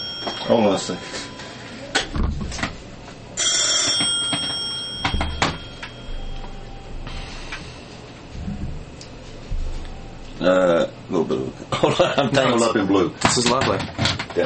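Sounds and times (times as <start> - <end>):
telephone ringing: 0.0 - 2.1, 3.4 - 6.9
room noise: 0.0 - 14.4
speech: 0.5 - 1.3, 11.3 - 14.4.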